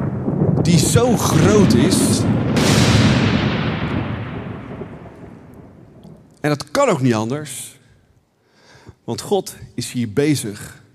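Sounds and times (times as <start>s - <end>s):
thunder of a huge storm rumbling and cracking: 0.0s - 7.1s
speech: 0.7s - 2.8s, 6.4s - 7.8s, 9.1s - 10.8s.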